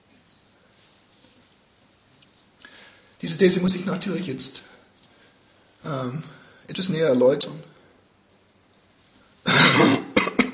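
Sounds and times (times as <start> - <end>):
speech: 3.2 - 4.7, 5.9 - 7.7
person coughing: 9.5 - 10.5
throat clearing: 9.5 - 10.5.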